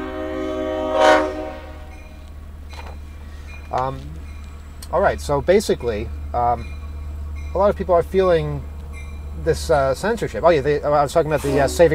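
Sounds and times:
diesel train horn blast: 0.0s - 2.2s, 11.3s - 11.9s
diesel train rumbling: 0.0s - 11.9s
speech: 3.7s - 4.2s, 4.9s - 6.8s, 7.6s - 8.7s, 9.4s - 11.9s.

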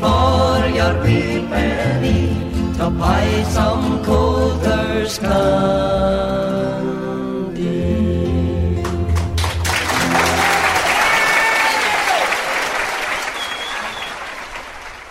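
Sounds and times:
final notes of music: 0.0s - 10.9s
speech: 0.8s - 6.9s
crowd applauding after a song: 8.8s - 15.0s
faint whoops from the crowd: 10.1s - 14.3s.

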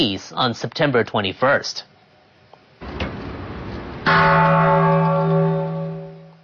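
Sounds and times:
speech: 0.0s - 1.9s
Japanese peace bell cast from coins struck at the United Nations: 4.0s - 6.4s.

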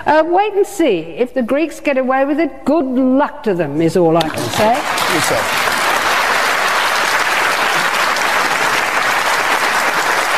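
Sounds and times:
speech: 0.0s - 5.7s
large audience applauding a panel speaker: 4.3s - 10.3s.

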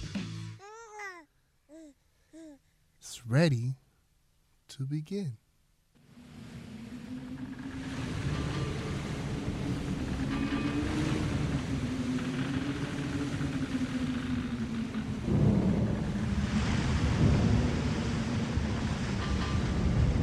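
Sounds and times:
speech: 3.1s - 3.8s, 4.7s - 5.4s
blowing wind in a thunderstorm: 6.1s - 20.2s
deep continuous rumbling thunder: 7.3s - 20.2s.

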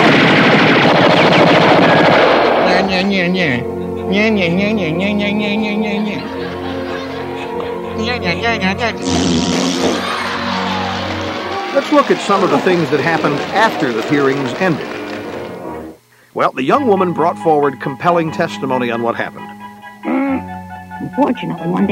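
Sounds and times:
police gunshot bursts: 0.0s - 2.9s
speech: 3.0s - 6.0s, 8.0s - 10.1s, 11.8s - 15.1s, 16.4s - 21.9s
laughter: 3.4s - 8.7s, 9.7s - 15.4s
people shouting: 10.0s - 15.2s.

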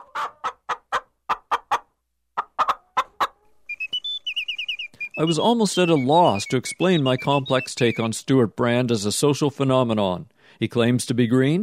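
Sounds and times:
chickens clucking: 0.0s - 8.3s
higher thin chirping calls: 3.6s - 8.2s
speech: 5.2s - 11.6s.

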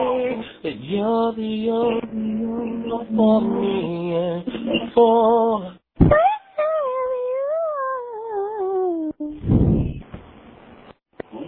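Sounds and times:
speech: 0.6s - 6.2s
dog howling as if singing: 6.1s - 9.1s.

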